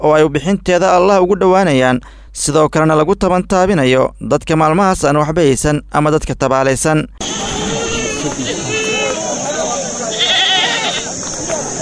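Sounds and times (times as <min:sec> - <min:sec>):
speech: 0:00.0 - 0:07.4, 0:08.2 - 0:08.7
goats and sheep bleating at a crowded livestock market in Bay region, Somalia: 0:07.2 - 0:11.2
crowd noise and people talking at a livestock market: 0:07.2 - 0:11.7.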